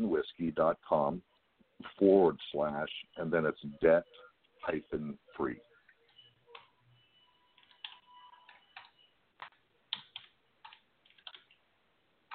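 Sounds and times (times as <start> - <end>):
speech: 0.2 - 5.7
typing a web address on a computer keyboard: 7.6 - 11.6.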